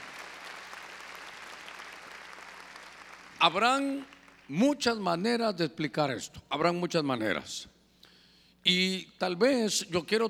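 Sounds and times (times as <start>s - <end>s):
church audience applauding loudly after a prayer: 0.0s - 4.4s
speech: 3.4s - 7.8s, 8.6s - 10.2s.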